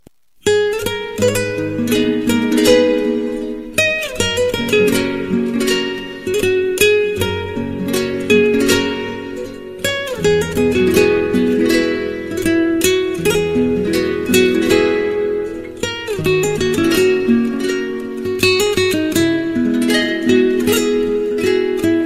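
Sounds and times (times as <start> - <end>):
romantic guitar tone: 0.3 - 22.0.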